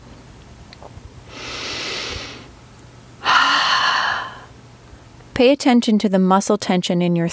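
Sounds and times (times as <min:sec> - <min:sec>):
slow open-mouthed exhale: 0:01.3 - 0:02.5, 0:03.2 - 0:04.5
speech: 0:05.4 - 0:07.3.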